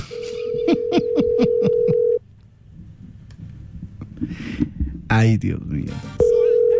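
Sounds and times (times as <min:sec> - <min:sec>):
unanswered telephone call ringing: 0:00.1 - 0:02.2, 0:06.3 - 0:06.7
speech: 0:05.2 - 0:06.2.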